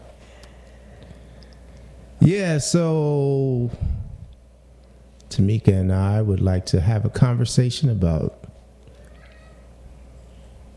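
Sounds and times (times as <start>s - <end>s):
steady hum: 0.0s - 10.7s
speech: 2.2s - 4.0s, 5.3s - 8.4s
cat meowing faintly: 8.9s - 9.7s.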